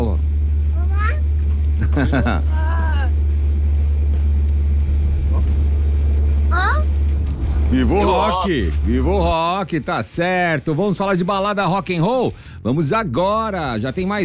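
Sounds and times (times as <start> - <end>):
car taking children to school through traffic on a rainy day in Interlagos: 0.0 - 12.4
children's high-pitched sing-song calls and squeals: 0.8 - 1.3, 6.5 - 7.0
laughter: 1.8 - 2.7
speech: 2.0 - 2.6, 7.7 - 14.2.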